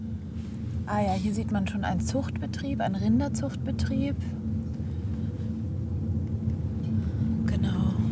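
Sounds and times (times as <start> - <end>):
car interior engine drone while turning: 0.0 - 8.1
faint tonal hum: 0.0 - 8.1
speech: 0.9 - 4.4.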